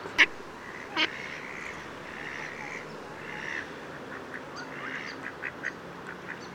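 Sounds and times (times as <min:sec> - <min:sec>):
Pacific black duck harsh quacks: 0:00.2 - 0:03.7, 0:04.6 - 0:06.4
Pacific black duck calls: 0:00.2 - 0:06.4.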